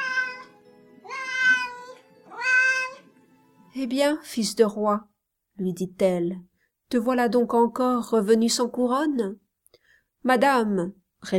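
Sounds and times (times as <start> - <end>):
cats wailing on the gutters: 0.0 - 3.1
speech: 3.8 - 9.4, 10.2 - 11.3.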